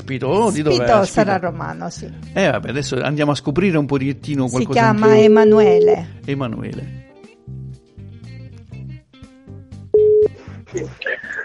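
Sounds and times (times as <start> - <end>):
speech: 0.1 - 7.6, 10.7 - 11.4
higher chirping telephone tones: 4.9 - 6.0
electronic telephone tones on an outgoing call: 5.0 - 6.0, 10.0 - 10.4.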